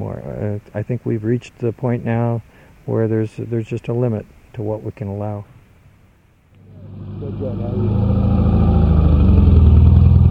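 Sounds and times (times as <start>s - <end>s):
speech: 0.5s - 5.5s, 7.3s - 8.3s
compact car engines rumbling while descending into a valley: 6.6s - 10.2s.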